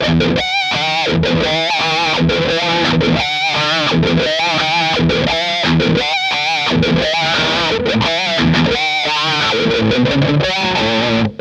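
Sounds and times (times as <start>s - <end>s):
electric guitar bridge pickup with wah: 0.0s - 11.3s.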